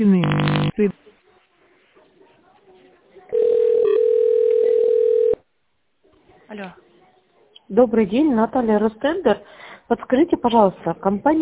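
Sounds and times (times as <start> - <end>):
telephone tone when dialing an extension in tone mode: 0.2 - 0.7, 3.3 - 5.4
faint noise: 0.2 - 9.9
speech: 7.8 - 11.3.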